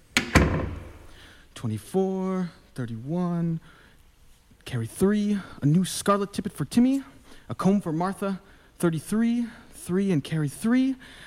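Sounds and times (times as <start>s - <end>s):
door swinging shut with a solid thud: 0.0s - 1.1s
door latch click: 0.2s - 1.0s
speech: 1.6s - 3.8s, 4.7s - 11.2s.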